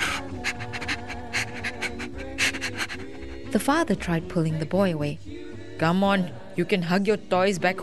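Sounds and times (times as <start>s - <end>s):
dog panting while a boy hugs it: 0.0s - 3.5s
speech: 3.5s - 7.8s.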